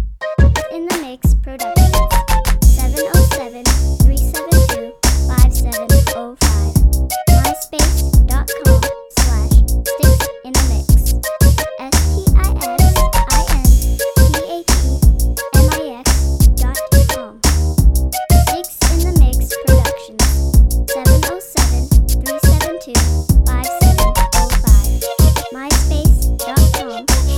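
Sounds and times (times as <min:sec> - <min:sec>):
flute over a beat: 0:00.1 - 0:27.3.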